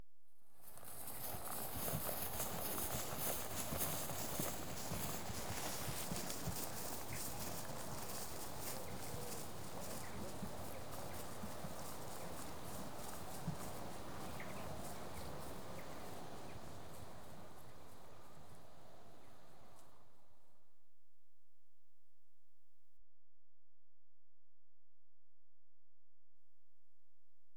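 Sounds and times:
horse walking through grass: 0.6s - 20.0s.

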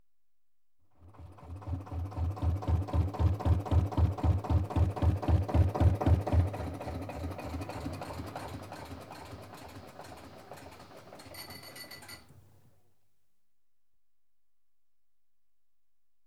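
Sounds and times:
canal narrowboat engine stopping: 1.4s - 12.3s.

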